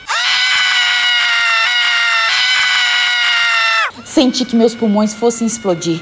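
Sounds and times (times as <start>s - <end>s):
woman and child screaming together: 0.0s - 4.0s
speech: 4.2s - 5.9s.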